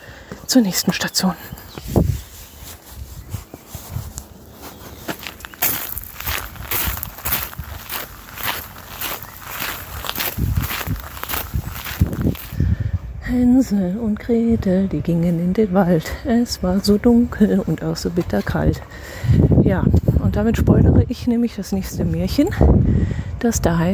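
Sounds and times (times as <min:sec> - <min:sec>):
speech: 0:00.5 - 0:02.0, 0:13.4 - 0:23.9
rustling: 0:01.8 - 0:12.6
footsteps walking down outdoor stairs on a trail in Marburg: 0:04.5 - 0:12.6.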